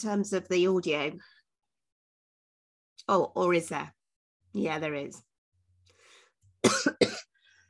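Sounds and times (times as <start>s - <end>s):
speech: 0.0s - 1.4s, 3.1s - 5.3s, 6.6s - 7.3s
person coughing: 6.6s - 7.3s.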